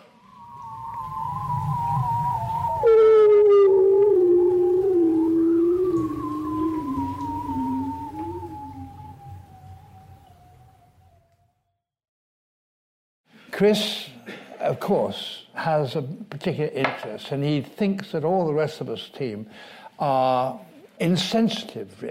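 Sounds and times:
bearded seals singing under Arctic sea ice, recorded with hydrophones: 0.0 - 11.4
speech: 13.6 - 14.1, 14.7 - 22.1.

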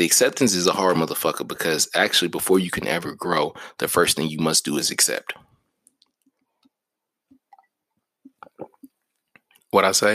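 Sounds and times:
speech: 0.0 - 5.5, 9.7 - 10.1
person gulping a drink: 8.3 - 9.0.

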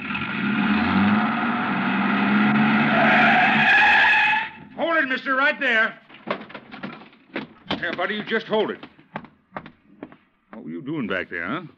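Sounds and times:
truck engine roaring as the truck pulls away: 0.0 - 4.0
speech: 5.2 - 6.0, 7.8 - 8.9, 10.9 - 11.7.

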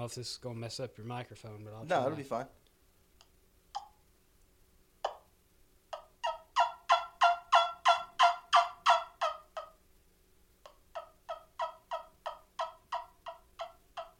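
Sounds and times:
speech: 0.0 - 2.6
turkey suction call clucks: 5.0 - 5.3, 5.9 - 9.8, 10.6 - 14.1.

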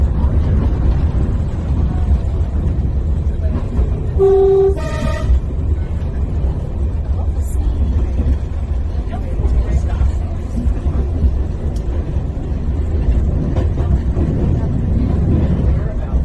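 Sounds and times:
train rumbling: 0.0 - 16.2
train horn toots: 4.1 - 5.5.

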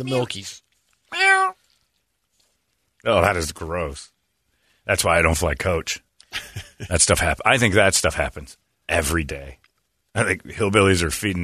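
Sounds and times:
speech: 0.0 - 1.5, 3.0 - 4.1, 4.8 - 11.4
cat meowing loudly: 1.1 - 1.6.

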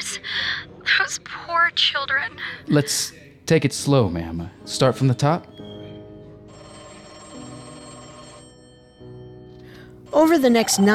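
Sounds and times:
speech: 0.1 - 5.6, 10.2 - 10.9
telephone bell ringing: 6.5 - 10.9.

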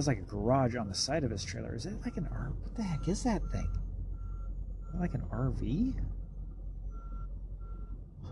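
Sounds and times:
speech: 0.0 - 3.9, 4.9 - 6.2
deep steady truck engine rumble at a truck stop: 0.0 - 8.3
high reversing beep: 2.0 - 8.3.

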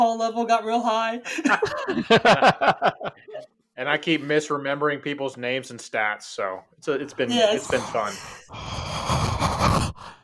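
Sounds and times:
speech: 0.1 - 10.2
laughter: 1.4 - 3.4
heavy rasping mouth breathing: 7.6 - 10.2.

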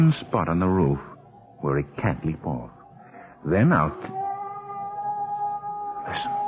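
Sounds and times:
speech: 0.0 - 2.8, 3.4 - 4.2, 6.1 - 6.4
cat howling and screeching: 2.4 - 6.4.

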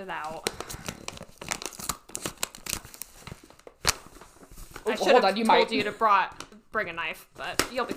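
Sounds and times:
speech: 0.1 - 0.6, 4.9 - 7.9
wrapping paper being torn and crinkled: 0.3 - 5.0.

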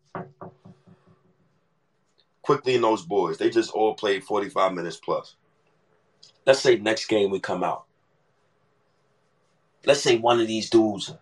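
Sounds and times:
knocking on a wooden surface: 0.0 - 1.3, 11.0 - 11.2
speech: 2.5 - 5.4, 6.4 - 7.9, 9.8 - 11.2.

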